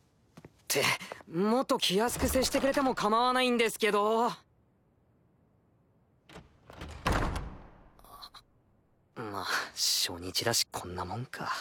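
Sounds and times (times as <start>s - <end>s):
speech: 0.7s - 4.4s, 10.1s - 11.6s
door banging open: 2.1s - 3.1s, 6.3s - 8.0s.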